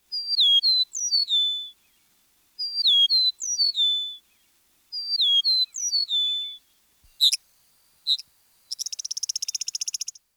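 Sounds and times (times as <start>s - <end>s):
Eastern Meadowlark singing: 0.1s - 1.8s, 2.6s - 4.3s, 4.9s - 7.4s, 8.1s - 10.2s.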